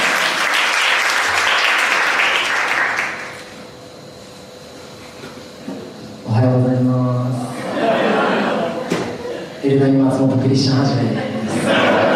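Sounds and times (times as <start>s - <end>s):
loud dense applause from a crowd: 0.0s - 3.6s
quiet room hum: 0.0s - 12.1s
laughter: 7.4s - 9.9s, 10.9s - 12.1s
speech: 9.8s - 11.8s.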